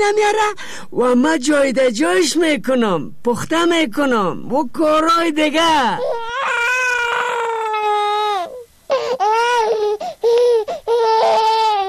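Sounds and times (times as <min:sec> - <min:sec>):
speech: 0:00.0 - 0:06.2
baby crying in high wailing bursts after waking up: 0:05.8 - 0:11.8.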